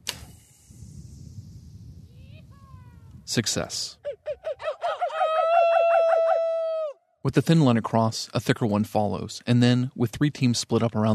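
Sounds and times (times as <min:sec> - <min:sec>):
arrow released from a drawn bow with a sharp snap: 0:00.0 - 0:02.2
arrow whoosh: 0:00.0 - 0:03.3
quiet outdoor ambience: 0:00.0 - 0:11.1
speech: 0:03.3 - 0:04.0, 0:07.2 - 0:11.1.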